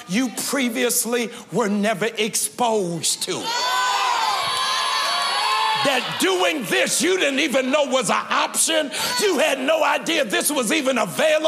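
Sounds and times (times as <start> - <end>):
speech: 0.1 - 3.7, 5.8 - 11.4
room full of people screaming and cheering: 3.3 - 9.6.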